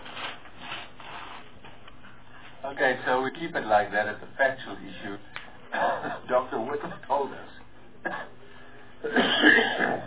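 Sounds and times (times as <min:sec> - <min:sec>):
speech: 0:02.7 - 0:08.4, 0:09.0 - 0:10.0
person coughing: 0:08.0 - 0:08.4, 0:09.0 - 0:10.0
rough gurgling throat-clear clearing phlegm: 0:09.0 - 0:10.0.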